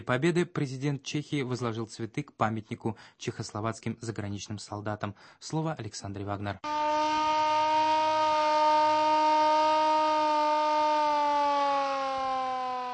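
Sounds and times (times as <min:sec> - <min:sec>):
speech: 0:00.0 - 0:07.2
air raid siren wailing at an outdoor military equipment exhibition: 0:06.6 - 0:12.9.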